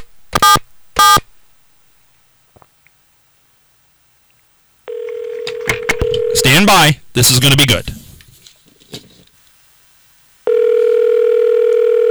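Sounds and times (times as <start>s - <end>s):
faint hiss: 0.0s - 4.9s, 6.4s - 10.5s
outgoing phone call ringing with short buzzy rings: 4.9s - 7.0s, 10.5s - 12.0s
speech: 6.6s - 8.0s.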